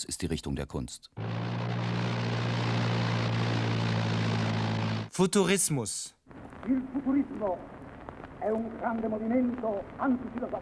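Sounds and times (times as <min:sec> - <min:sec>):
speech: 0:00.0 - 0:01.6, 0:05.2 - 0:07.8, 0:08.4 - 0:10.6
propeller airplane engine droning: 0:01.2 - 0:05.1.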